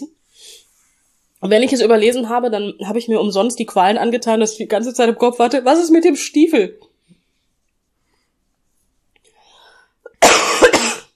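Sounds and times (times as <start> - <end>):
speech: 1.4 - 6.9
person coughing: 10.1 - 11.1.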